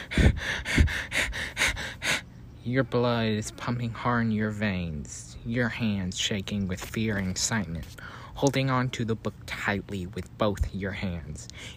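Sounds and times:
rapid heavy frightened breathing: 0.0s - 2.5s, 7.9s - 8.4s, 11.5s - 11.7s
speech: 2.6s - 11.7s.

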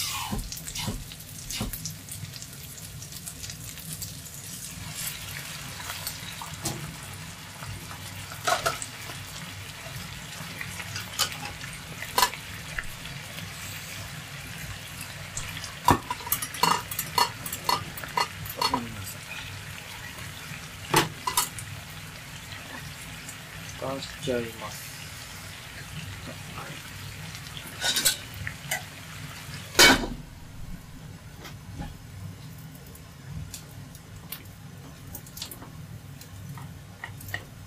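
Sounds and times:
bacon and onions simmering in a little water in a frying pan: 0.0s - 37.6s
speech: 24.0s - 24.8s.

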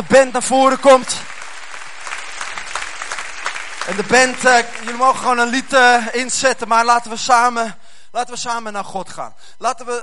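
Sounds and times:
speech: 0.0s - 1.3s, 3.9s - 10.0s
large audience applauding: 0.8s - 6.2s.

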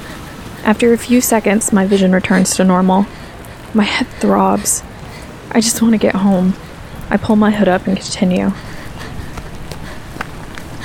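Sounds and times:
brisk footsteps on a sidewalk: 0.0s - 10.8s
faint noise: 0.0s - 10.8s
speech: 0.6s - 4.9s, 5.5s - 8.7s.

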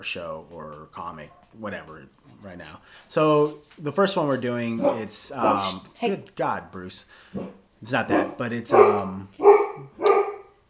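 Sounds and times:
speech: 0.0s - 9.5s
dog barking: 4.8s - 5.8s, 7.4s - 10.6s.

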